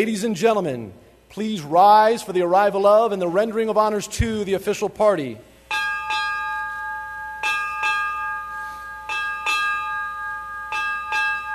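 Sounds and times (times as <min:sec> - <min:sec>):
speech: 0:00.0 - 0:05.5
Navy ship's bell ringing eight bells for end of watch: 0:05.7 - 0:11.5.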